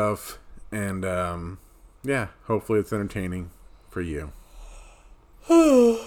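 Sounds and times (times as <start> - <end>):
speech: 0.0 - 4.4, 5.4 - 6.0
person yawning: 5.4 - 6.0.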